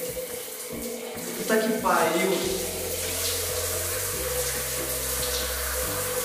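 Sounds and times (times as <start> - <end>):
shower water running: 0.0 - 6.2
speech: 1.5 - 2.7
low droning hum: 2.4 - 6.2.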